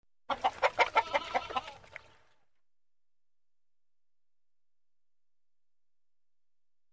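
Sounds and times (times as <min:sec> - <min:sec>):
alarmed rooster: 0:00.3 - 0:01.8.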